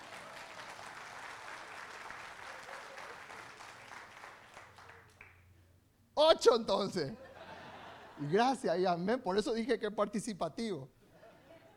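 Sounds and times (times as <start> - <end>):
audience applause: 0.0 - 5.3
speech: 6.3 - 7.3, 8.2 - 11.0
laughter: 7.0 - 8.6, 11.0 - 11.7.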